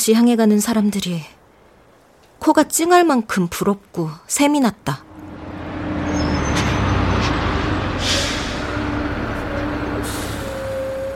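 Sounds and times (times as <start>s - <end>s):
speech: 0.0s - 1.4s, 2.4s - 5.1s
bus idling at a bus stop: 5.0s - 11.1s
bus air brakes releasing: 6.1s - 11.1s.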